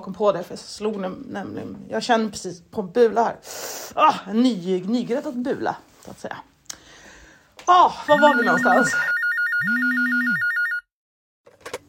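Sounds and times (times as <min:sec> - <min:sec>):
speech: 0:00.0 - 0:06.5, 0:07.7 - 0:09.7
telephone ringing: 0:08.1 - 0:10.9.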